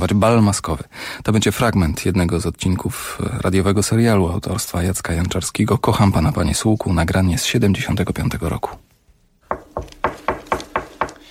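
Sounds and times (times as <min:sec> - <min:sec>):
speech: 0:00.0 - 0:08.9
knocking on a door: 0:09.5 - 0:11.2.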